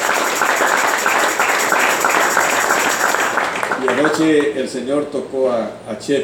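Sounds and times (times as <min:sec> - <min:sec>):
church audience applauding: 0:00.0 - 0:04.6
speech: 0:03.8 - 0:06.2.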